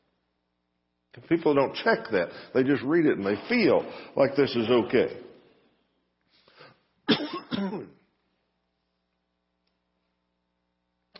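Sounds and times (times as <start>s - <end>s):
speech: 1.2s - 5.3s
man clearing throat: 7.1s - 8.1s
man coughing: 7.1s - 8.1s.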